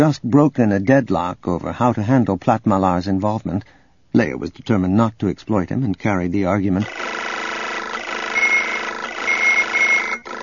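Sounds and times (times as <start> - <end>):
speech: 0.0 - 7.3
four data pads on a table chirping warning signals: 8.2 - 10.3.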